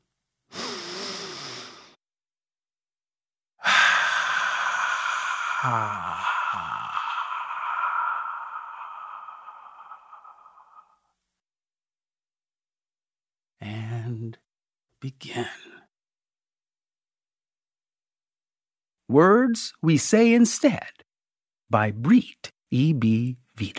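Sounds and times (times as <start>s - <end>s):
deep inhaled breath: 0.5s - 2.0s, 3.6s - 11.1s
speech: 5.6s - 6.8s, 19.1s - 21.0s, 21.7s - 23.7s.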